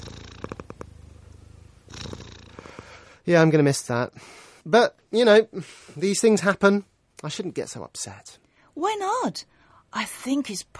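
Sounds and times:
house cat with a striped face purring: 0.0 - 3.1
speech: 3.2 - 10.7.

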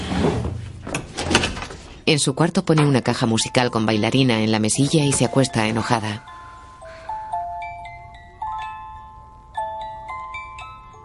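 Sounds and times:
heavy piece of furniture scraping and dragging: 0.0 - 0.8
door clunking and creaking as it is pulled open: 0.2 - 1.9
speech: 2.1 - 6.4.

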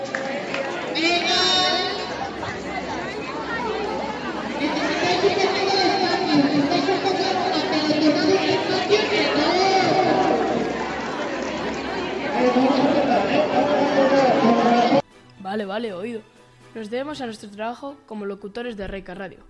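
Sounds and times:
murmur of a large crowd chattering outdoors at a school event: 0.0 - 15.0
louder shouts from a crowd at a school event: 4.6 - 15.0
speech: 15.8 - 19.4.

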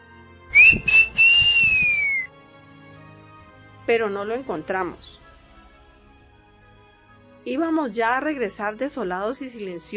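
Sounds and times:
person whistling: 0.5 - 2.3
speech: 3.9 - 5.2, 7.4 - 9.9.

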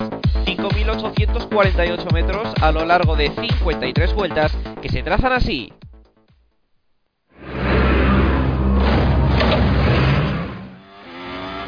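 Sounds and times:
speech: 0.9 - 5.8
racing car engine starting and revving on the start-finish straight: 7.4 - 11.6.

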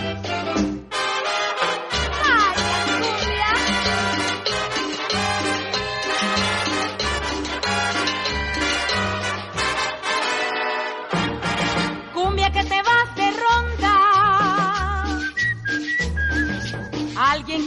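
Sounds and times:
cumbia song played by a full orchestra: 0.0 - 17.6
whistling woven through the tune: 15.1 - 17.1.

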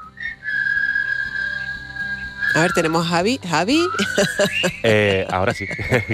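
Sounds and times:
person whistling one long steady high note: 0.0 - 6.1
speech: 2.5 - 6.1
laughter: 3.9 - 6.1.

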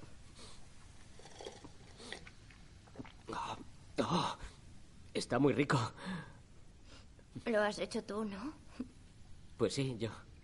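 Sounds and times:
man slurping noodle soup from a container: 1.1 - 3.7
small wet mouth sounds: 1.2 - 3.7
speech: 5.2 - 6.3, 7.4 - 9.0, 9.6 - 10.3.

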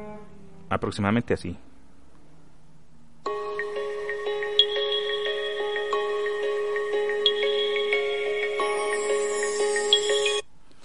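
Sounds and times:
speech: 0.7 - 1.7
phone critical alert tone with stacked electronic tones: 3.3 - 10.4.

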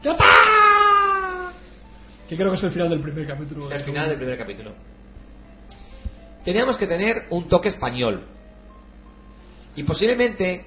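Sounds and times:
speech: 0.0 - 0.5, 2.3 - 5.0, 6.4 - 8.4, 9.8 - 10.6
man screaming with joy: 0.0 - 1.6.

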